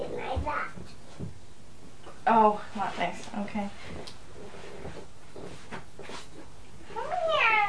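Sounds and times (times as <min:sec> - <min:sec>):
speech: 0:00.4 - 0:00.8, 0:02.3 - 0:04.2
person imitating a cat meow: 0:07.0 - 0:07.6.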